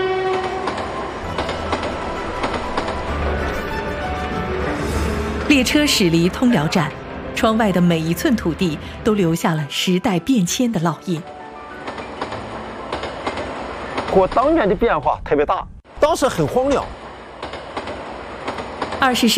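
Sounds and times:
train rolling along railway tracks with clattering wheels: 0.2s - 4.2s, 11.2s - 14.8s, 16.7s - 19.3s
people talking: 5.5s - 11.2s, 14.1s - 16.9s, 19.0s - 19.3s.

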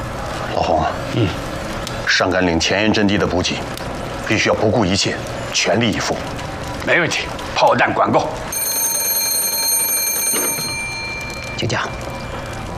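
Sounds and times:
people talking: 0.2s - 1.4s, 2.0s - 6.3s, 6.8s - 8.4s, 11.3s - 12.1s
telephone ringing: 8.3s - 12.7s.

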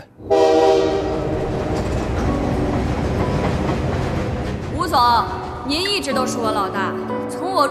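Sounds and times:
moving train rumbling on rails: 0.0s - 7.6s
train horn blaring: 0.2s - 3.9s.

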